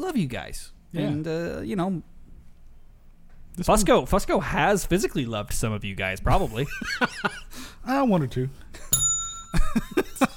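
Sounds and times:
speech: 0:00.0 - 0:02.1, 0:03.6 - 0:09.1, 0:09.7 - 0:10.3
bright bell ding: 0:08.9 - 0:10.3.

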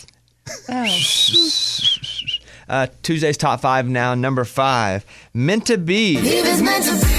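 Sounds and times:
speech: 0:00.7 - 0:02.0, 0:02.7 - 0:07.0
breathy airy whistling attempt: 0:00.8 - 0:02.6.

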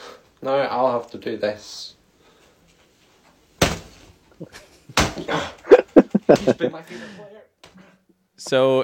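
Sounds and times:
speech: 0:00.4 - 0:02.0, 0:04.4 - 0:07.5, 0:08.4 - 0:08.8
fist pounding a football jersey: 0:03.6 - 0:04.0, 0:05.0 - 0:05.3
laughter: 0:04.4 - 0:07.2.

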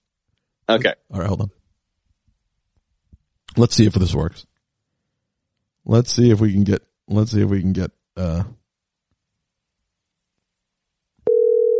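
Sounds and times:
speech: 0:00.7 - 0:01.6, 0:03.6 - 0:04.5, 0:05.8 - 0:08.6
telephone ringing tone of a regular phone call: 0:11.2 - 0:11.7.

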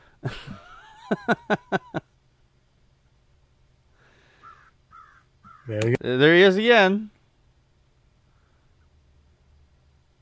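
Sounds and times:
laughter: 0:00.2 - 0:02.0
speech: 0:00.2 - 0:02.0, 0:05.7 - 0:07.1
crow cawing: 0:04.3 - 0:05.9.

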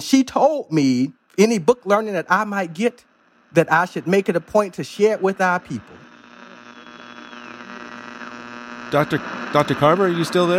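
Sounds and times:
speech: 0:00.0 - 0:06.0, 0:08.9 - 0:10.5
electrical hum with buzzing harmonics on the line: 0:00.0 - 0:10.5
faint whistling tones in static: 0:06.6 - 0:08.0.

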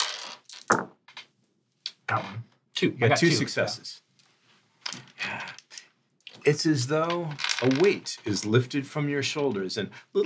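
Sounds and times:
several dice tumbling across a hard tabletop: 0:00.0 - 0:01.3, 0:06.4 - 0:08.5
speech: 0:02.1 - 0:04.0, 0:06.5 - 0:10.2.

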